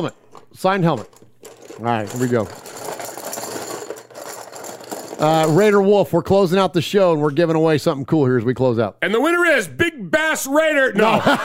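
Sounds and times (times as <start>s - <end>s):
speech: 0.0s - 1.2s, 1.8s - 2.7s, 5.2s - 11.4s
paper tickets rustling and rattling as they are mixed in a popcorn can: 1.5s - 5.8s
laughter: 11.0s - 11.4s.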